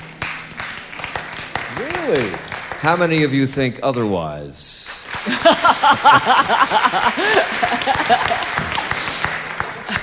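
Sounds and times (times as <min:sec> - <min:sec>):
audience clapping and applauding: 0:00.0 - 0:04.2, 0:04.8 - 0:10.0
speech: 0:01.8 - 0:04.7, 0:05.4 - 0:08.6
laughter: 0:05.2 - 0:10.0.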